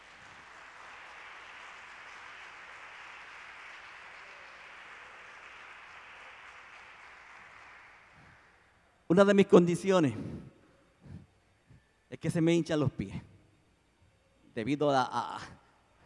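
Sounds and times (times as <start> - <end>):
church congregation applauding: 0.0 - 10.1
speech: 9.1 - 10.5, 12.2 - 13.3, 14.6 - 15.6.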